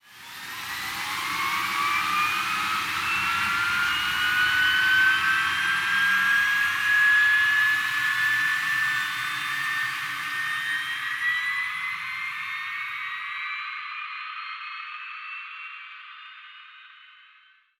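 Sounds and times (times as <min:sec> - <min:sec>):
F-15 aircraft jet engine starting: 0:00.1 - 0:12.6.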